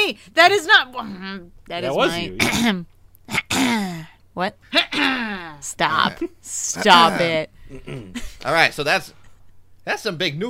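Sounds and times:
speech: 0.1 - 9.2, 9.8 - 10.4
person clearing throat in an exaggerated way: 2.3 - 4.1.

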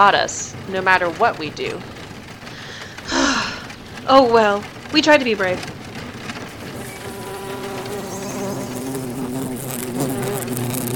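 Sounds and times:
speech: 0.0 - 2.0, 4.0 - 5.8
huge bugs buzzing in a droning hum: 6.4 - 10.9.

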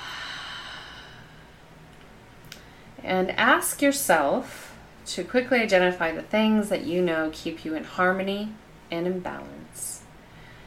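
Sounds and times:
deep breath in and out: 0.0 - 1.7, 10.2 - 10.6
speech: 3.1 - 9.9.

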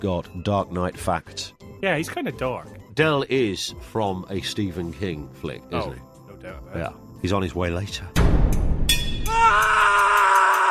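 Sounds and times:
speech: 0.0 - 8.3, 9.4 - 10.1
sound-effect scream: 9.3 - 10.6.

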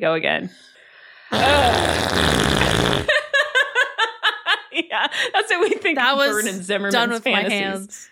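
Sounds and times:
speech: 0.0 - 3.2, 4.9 - 8.1
voice imitating a long ripping fart with a buzzing raspberry: 1.3 - 3.1
laughter: 2.6 - 6.4.

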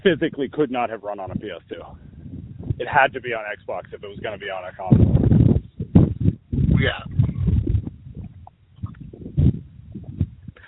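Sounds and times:
speech: 0.0 - 2.1, 2.8 - 5.4, 6.8 - 7.2
wind gusts on open plains buffeting the microphone: 0.0 - 10.6.

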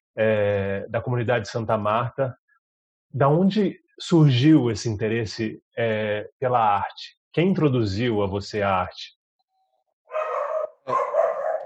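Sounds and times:
speech: 0.2 - 2.4, 3.1 - 9.2, 10.9 - 11.2
dog barking: 10.1 - 11.6.

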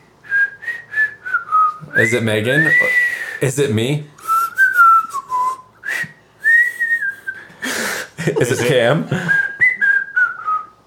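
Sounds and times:
person whistling a song's whistle solo: 0.2 - 3.4, 4.2 - 7.5, 9.2 - 10.8
speech: 1.9 - 4.2, 8.2 - 9.4
laughter: 7.7 - 9.5.

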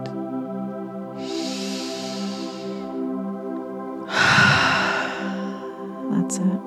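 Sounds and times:
steady humming musical drone: 0.0 - 6.6
slow deep breaths during a guided breathing exercise: 1.2 - 3.0, 4.1 - 6.0.

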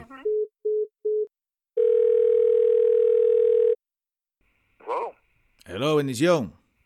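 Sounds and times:
telephone dialing tone with short beeps and a long tone: 0.4 - 3.8
speech: 5.8 - 6.8.

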